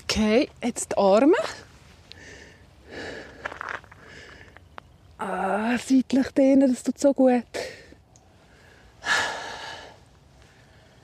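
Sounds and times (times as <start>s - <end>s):
speech: 0.2s - 1.7s, 5.2s - 7.7s
heavy forceful huffing breaths: 2.1s - 4.6s, 7.6s - 11.0s.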